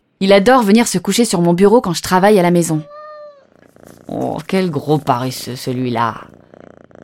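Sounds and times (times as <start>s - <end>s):
speech: 0.2s - 3.0s, 4.1s - 6.4s
cat purring: 2.6s - 7.0s.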